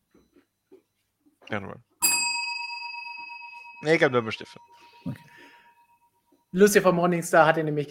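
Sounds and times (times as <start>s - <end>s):
speech: 1.5s - 1.9s, 3.8s - 5.2s, 6.5s - 7.8s
single bright bell strike ringing: 2.0s - 7.0s.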